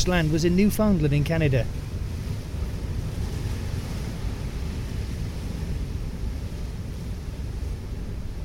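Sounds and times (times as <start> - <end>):
speech: 0.0 - 1.8
foaming sea surf roaring: 0.0 - 8.4
strong gusting coastal wind buffeting the microphone: 0.0 - 8.4.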